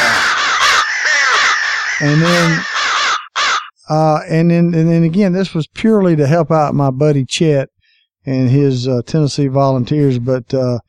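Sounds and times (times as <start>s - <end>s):
crow cawing: 0.0s - 3.8s
speech: 2.0s - 2.7s, 3.9s - 10.8s.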